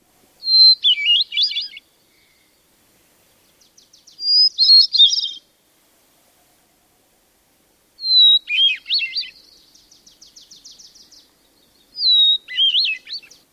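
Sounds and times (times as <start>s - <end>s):
Hermit Thrush singing: 0.0s - 2.7s, 3.4s - 5.5s, 8.0s - 13.5s.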